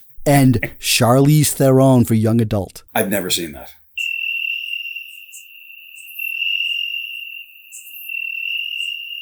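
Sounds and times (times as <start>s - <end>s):
speech: 0.2s - 3.8s
crickets chirping: 3.5s - 9.1s.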